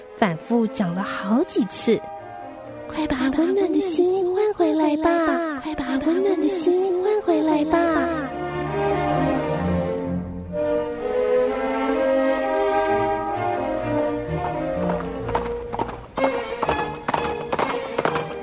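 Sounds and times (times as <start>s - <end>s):
sustained tonal background: 0.0s - 18.4s
speech: 0.2s - 2.2s, 2.9s - 8.4s
horse hooves clip-clopping as a rider hurries: 14.0s - 18.4s.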